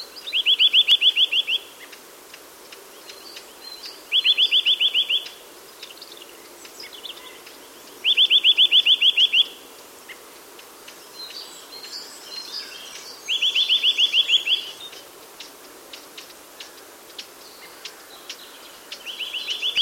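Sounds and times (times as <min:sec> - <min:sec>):
Eurasian nuthatch Sitta europaea rapid trilled calls: 0:00.2 - 0:02.0, 0:03.7 - 0:06.0, 0:06.8 - 0:10.2, 0:12.9 - 0:16.0, 0:17.6 - 0:19.8
faint ticks: 0:01.8 - 0:04.0, 0:05.2 - 0:07.7, 0:10.1 - 0:12.0, 0:14.8 - 0:19.2.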